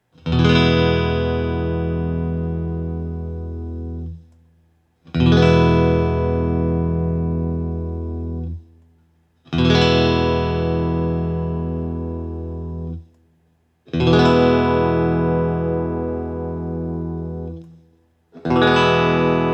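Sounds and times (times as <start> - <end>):
Guild S284 Aviator guitar with EMG pickups in open E: 0.0 - 19.5.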